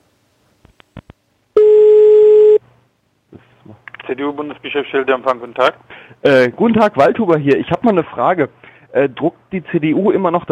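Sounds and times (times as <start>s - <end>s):
telephone ringback tone on a call to a political party's office: 1.6s - 2.6s
speech: 4.2s - 10.5s.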